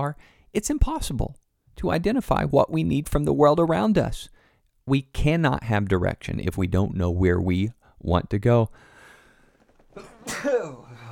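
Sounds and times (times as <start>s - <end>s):
speech: 0.0s - 8.9s, 10.0s - 10.8s
sharp sneeze: 10.0s - 11.0s.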